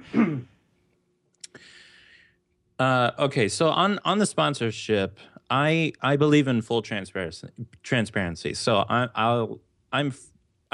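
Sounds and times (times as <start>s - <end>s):
short rough throat clearing: 0.0s - 0.6s
speech: 2.8s - 10.7s.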